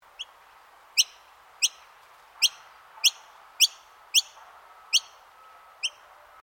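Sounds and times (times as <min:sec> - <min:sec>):
noisy miner chip calls in Queensland: 0:01.0 - 0:05.2, 0:05.8 - 0:06.1.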